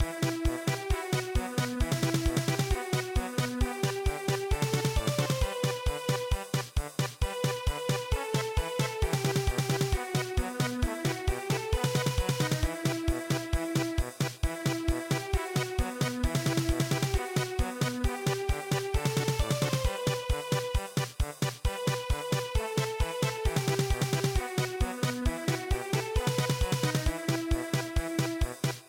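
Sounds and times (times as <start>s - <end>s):
German polka music: 0.0s - 28.8s.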